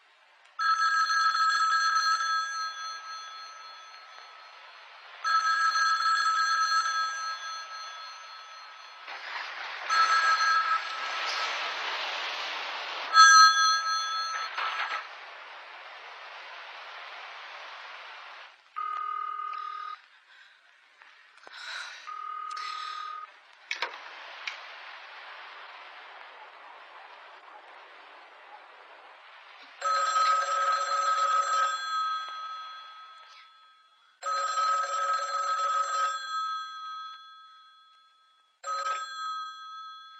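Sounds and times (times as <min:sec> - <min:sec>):
telephone ringing with bright buzzing double tone: 0:00.6 - 0:12.0, 0:13.1 - 0:15.2, 0:18.8 - 0:20.1, 0:22.0 - 0:23.9, 0:29.8 - 0:40.1.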